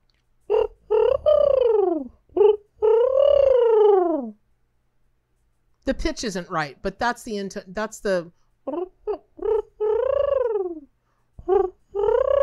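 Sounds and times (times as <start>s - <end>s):
person imitating a dove's coo: 0.5s - 4.4s, 8.7s - 12.4s
speech: 5.9s - 8.4s.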